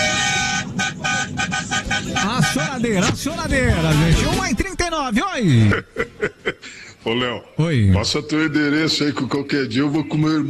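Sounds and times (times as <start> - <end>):
car horn honking in short loud toots: 0.0 - 4.6
steady noise: 0.0 - 10.4
speech: 2.8 - 6.3, 7.0 - 10.4
laughter: 5.4 - 6.8.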